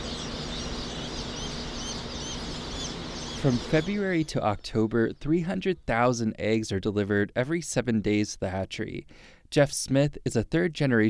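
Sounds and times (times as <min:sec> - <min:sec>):
thousands of freshly hatched chicks peeping in a hatchery in Lebanon Missouri: 0:00.0 - 0:05.9
speech: 0:03.4 - 0:11.0.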